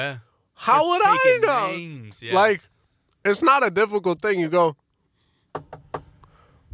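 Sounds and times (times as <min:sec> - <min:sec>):
speech: 0:00.0 - 0:04.8
knocking on a door: 0:05.5 - 0:06.1.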